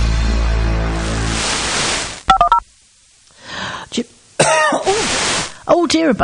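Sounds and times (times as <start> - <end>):
steady hiss: 0.7 - 6.2
person coughing: 4.4 - 5.0
speech: 5.7 - 6.2.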